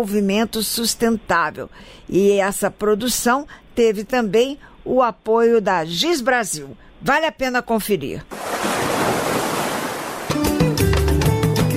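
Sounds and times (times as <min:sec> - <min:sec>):
speech: 0:00.0 - 0:08.4
ocean surf waves: 0:08.3 - 0:10.7.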